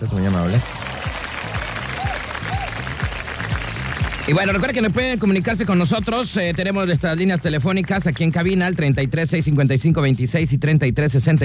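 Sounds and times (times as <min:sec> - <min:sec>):
speech: 0:00.0 - 0:01.2, 0:04.3 - 0:11.4
crowd applause: 0:00.0 - 0:09.0
rhythmic low thumps: 0:00.0 - 0:11.4.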